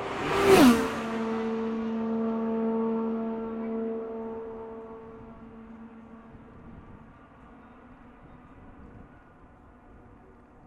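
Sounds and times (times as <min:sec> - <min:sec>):
IndyCar race car engine screaming past on track: 0:00.0 - 0:07.2.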